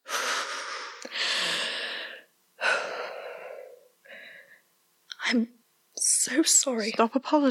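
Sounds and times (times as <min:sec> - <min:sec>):
deep breathing in and out: 0:00.0 - 0:04.7
speech: 0:05.3 - 0:05.6, 0:06.3 - 0:07.4.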